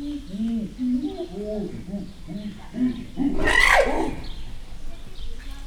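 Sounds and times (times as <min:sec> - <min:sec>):
chimpanzee calling outdoors in Gyor zoo: 0:00.1 - 0:04.4.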